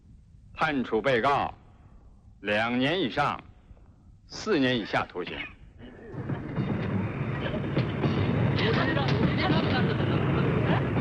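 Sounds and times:
speech: 0:00.6 - 0:01.6, 0:02.4 - 0:03.5, 0:04.3 - 0:05.6
indistinct murmuring voices: 0:05.4 - 0:11.0
train rumbling on rails in winter: 0:06.1 - 0:11.0.

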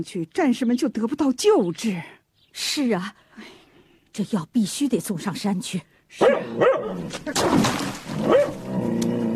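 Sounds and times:
speech: 0:00.0 - 0:03.6, 0:04.2 - 0:09.2
big yellow dog barking and yelping: 0:06.2 - 0:07.1, 0:08.3 - 0:08.6.

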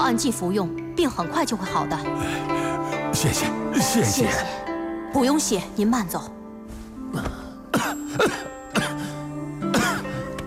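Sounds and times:
speech: 0:00.1 - 0:02.6, 0:03.2 - 0:06.4, 0:08.2 - 0:08.5
man coughing: 0:07.7 - 0:10.2.

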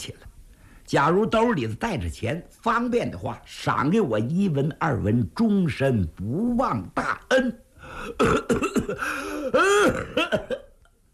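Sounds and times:
speech: 0:00.9 - 0:10.6
voice imitating a man's long coughing fit: 0:07.0 - 0:10.7.

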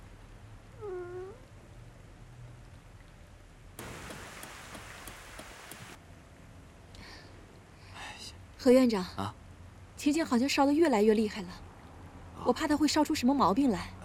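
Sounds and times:
cat meow: 0:00.8 - 0:01.4
heavy rain: 0:03.8 - 0:06.0
speech: 0:08.6 - 0:09.4, 0:10.0 - 0:11.7, 0:12.4 - 0:14.0.

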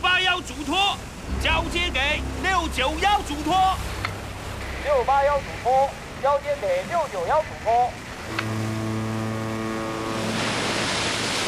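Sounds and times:
heavy churning rough sea waves: 0:00.0 - 0:11.4
speech: 0:00.4 - 0:04.0, 0:04.8 - 0:08.6
strong wind roaring: 0:01.0 - 0:08.4
deep steady ship-horn or engine drone: 0:01.2 - 0:11.4.

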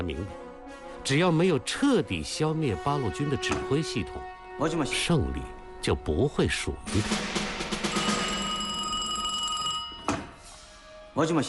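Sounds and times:
speech: 0:00.1 - 0:00.4, 0:01.0 - 0:07.4, 0:11.2 - 0:11.4
telephone bell ringing quietly: 0:07.8 - 0:10.4.

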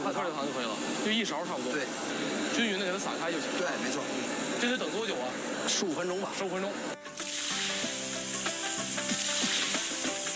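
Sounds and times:
speech: 0:00.2 - 0:07.0
soft melodic music: 0:06.9 - 0:10.3
pork belly slices sizzling in hot oil: 0:07.0 - 0:10.3.

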